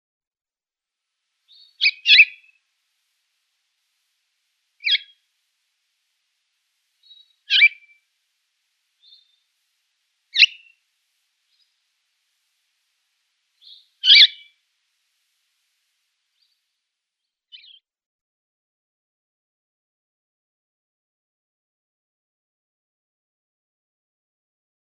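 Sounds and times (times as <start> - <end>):
blue chaffinch calls: 1.5 - 2.6, 4.8 - 5.2, 7.0 - 8.0, 9.0 - 9.4, 10.3 - 10.8, 13.6 - 14.6, 17.5 - 17.8.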